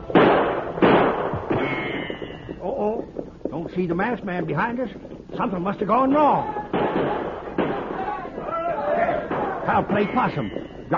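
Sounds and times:
gunshots during an outlaw attack on a stagecoach: 0.1s - 1.9s, 6.4s - 8.4s, 9.0s - 10.2s
speech: 3.7s - 7.2s, 9.7s - 10.9s.

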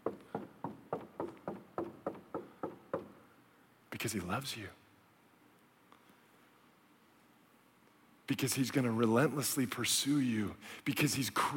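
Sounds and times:
knocking with dull solid thuds on a hard surface: 0.0s - 3.1s
speech: 4.0s - 4.8s, 8.3s - 11.5s.

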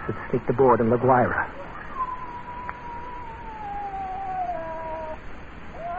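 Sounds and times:
speech: 0.1s - 1.8s
scrawny cat yowling by a stove: 1.6s - 5.9s.

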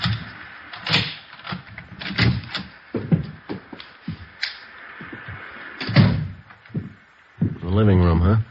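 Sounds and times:
front door clunk as it swings open: 0.0s - 3.4s
shuffling handling noises: 0.0s - 7.7s
key unlocking a front door: 0.8s - 2.7s
speech: 7.8s - 8.4s.

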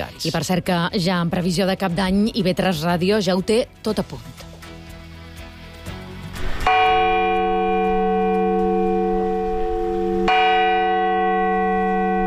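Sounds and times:
speech: 0.0s - 4.4s
town hall clock bell striking in Palma: 6.7s - 12.2s.

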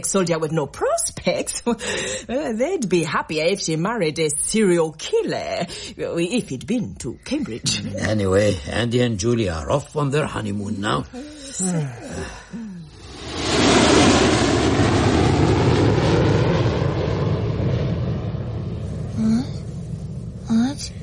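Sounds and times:
speech: 0.0s - 12.6s
jet engine roar of a plane taking off: 13.0s - 21.0s.

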